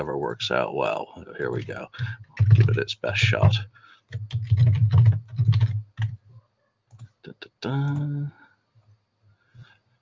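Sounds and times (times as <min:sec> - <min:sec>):
speech: 0:00.0 - 0:05.0, 0:07.6 - 0:08.4
typing on two computer keyboards: 0:01.6 - 0:06.2, 0:06.9 - 0:07.1.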